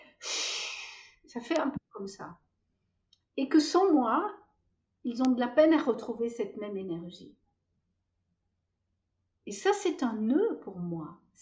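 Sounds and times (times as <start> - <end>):
voice imitating a hot ember hissing in water: 0.2 - 1.0
speech: 1.3 - 2.5, 3.4 - 4.4, 5.0 - 7.4, 9.5 - 11.4.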